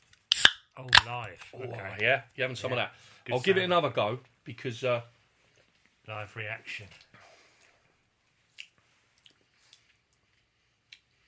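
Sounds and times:
speech: 0:00.8 - 0:05.2, 0:06.1 - 0:07.2
chewing a snack with crunchy and moist bites: 0:08.5 - 0:11.2.

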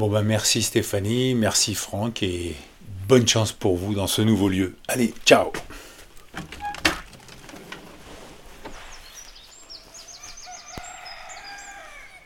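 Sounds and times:
speech: 0:00.0 - 0:05.8, 0:06.4 - 0:06.6
small birds chirping outdoors: 0:08.6 - 0:12.2
rooster crowing: 0:09.7 - 0:12.2.

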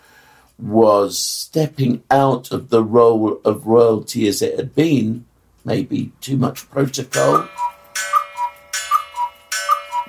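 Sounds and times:
speech: 0:00.6 - 0:07.7
clock chiming noon: 0:07.1 - 0:10.0.

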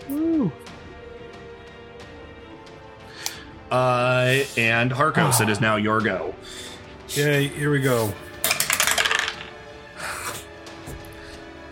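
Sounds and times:
speech: 0:03.7 - 0:08.3
die rolling on a hard tabletop: 0:08.4 - 0:09.5.

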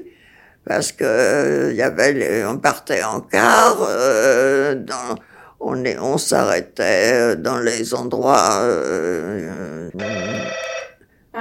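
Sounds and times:
speech: 0:00.6 - 0:10.7
telephone ringing with an electronic tone: 0:10.0 - 0:11.0.

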